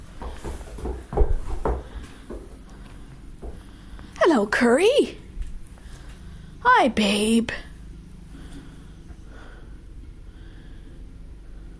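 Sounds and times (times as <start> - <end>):
door being pushed and tested to check whether it is shut: 0.2 - 2.4
speech: 4.3 - 5.2, 6.7 - 7.7.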